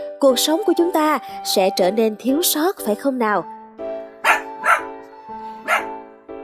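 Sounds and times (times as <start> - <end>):
steady humming musical background: 0.0 - 6.4
speech: 0.2 - 3.6
dog barking: 4.2 - 4.9, 5.6 - 6.0.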